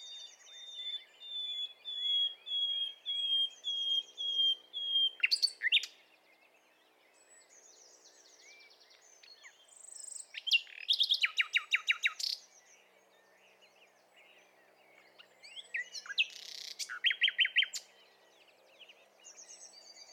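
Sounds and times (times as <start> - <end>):
other birds whistling faintly: 0.0 - 6.0, 7.2 - 13.4, 14.9 - 18.2
common nightingale (Luscinia megarhynchos) singing: 0.0 - 20.1.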